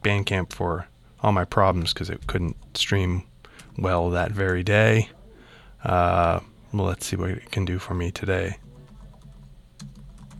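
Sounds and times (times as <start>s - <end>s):
speech: 0.0s - 5.2s, 5.8s - 8.6s
low steady hum: 0.0s - 10.3s
typing on a computer keyboard: 8.6s - 10.3s.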